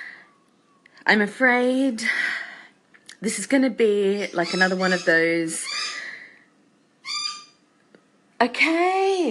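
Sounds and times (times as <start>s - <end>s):
speech: 1.1s - 2.3s, 3.2s - 5.7s, 8.4s - 9.2s
lorikeet giving a shrill nasal call: 4.0s - 6.2s, 6.8s - 7.7s.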